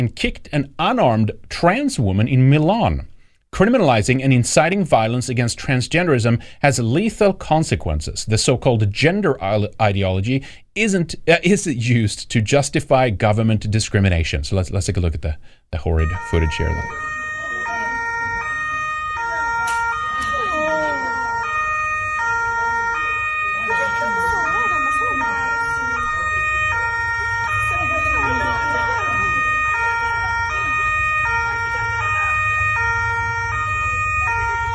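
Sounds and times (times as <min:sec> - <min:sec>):
speech: 0:00.0 - 0:17.1
indistinct voices: 0:15.8 - 0:21.4, 0:22.4 - 0:32.7
European emergency vehicle siren in two-tone hi-lo pattern: 0:15.8 - 0:34.7
street noise: 0:15.8 - 0:34.7.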